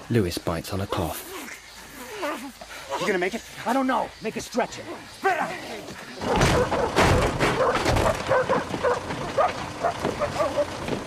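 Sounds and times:
dense noise: 0:00.0 - 0:11.0
speech: 0:00.1 - 0:01.5, 0:02.4 - 0:08.6
tracker dogs barking and yipping on a scent: 0:06.1 - 0:11.0.

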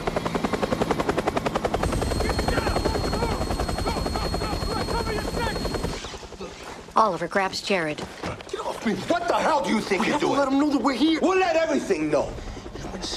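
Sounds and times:
military helicopter hovering and landing on helipad: 0:00.0 - 0:08.5
speech: 0:07.0 - 0:13.1.

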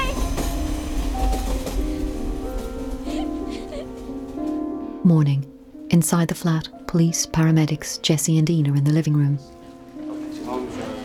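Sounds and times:
train rumbling past overhead near a city flat at night: 0:00.0 - 0:05.4
speech: 0:05.0 - 0:09.6.

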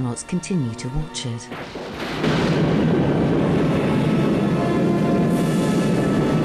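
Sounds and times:
speech: 0:00.0 - 0:02.7
landing pod thrusters firing gas jet: 0:01.5 - 0:06.4.

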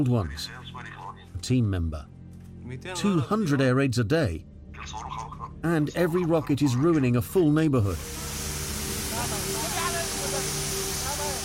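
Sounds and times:
speech: 0:00.0 - 0:00.6, 0:01.4 - 0:08.3
high-pressure fire hose spraying water during firefighting practice: 0:08.0 - 0:11.4.

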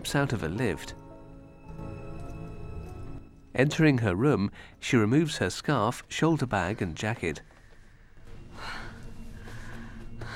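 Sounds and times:
speech: 0:00.0 - 0:01.0, 0:03.6 - 0:07.5
quick heavy breaths of a woman in a hotel room: 0:07.5 - 0:10.3.

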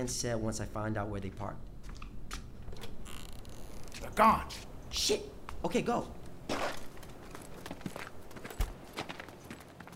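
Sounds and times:
speech: 0:00.0 - 0:01.7, 0:04.0 - 0:06.6
footsteps on a hard surface: 0:06.4 - 0:09.9.

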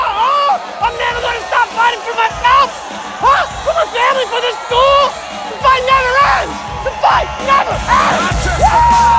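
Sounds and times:
thousands of students cheering and whooping in a courtyard: 0:00.0 - 0:09.1.

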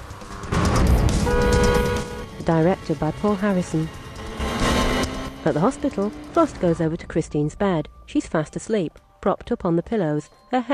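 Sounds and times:
silver sports car speeding along a motorway through traffic: 0:00.0 - 0:07.1
speech: 0:02.5 - 0:04.0, 0:05.4 - 0:10.7.

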